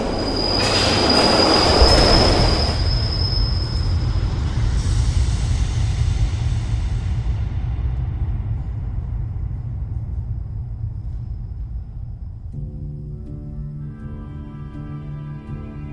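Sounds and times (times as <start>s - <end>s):
high metallic train wheel squeal: 0.0s - 4.4s
train roaring past: 0.0s - 12.5s.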